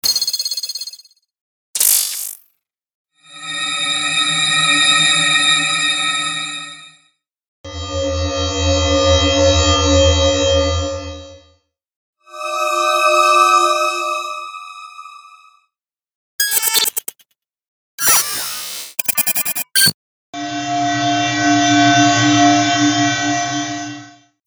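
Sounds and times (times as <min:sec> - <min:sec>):
glitchy hover alerts: 0:03.3 - 0:06.9, 0:07.7 - 0:11.4, 0:12.3 - 0:15.3, 0:18.0 - 0:24.1.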